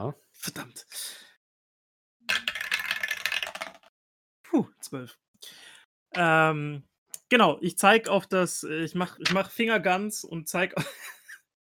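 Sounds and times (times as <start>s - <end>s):
speech: 0.0s - 1.2s, 4.5s - 11.2s
dice rolling for a tabletop role-playing game: 2.3s - 3.9s.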